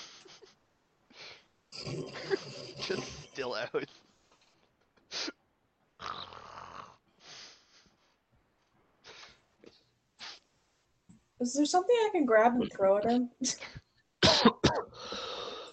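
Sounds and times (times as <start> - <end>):
loud rasping snores: 1.8 - 3.4, 6.0 - 7.0
speech: 2.9 - 4.0, 11.4 - 13.8.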